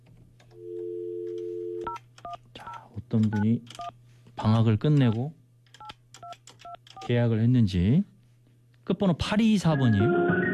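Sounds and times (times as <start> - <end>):
telephone line tone humming: 0.6 - 2.0
speech: 3.1 - 5.4, 7.1 - 8.1, 8.9 - 10.4.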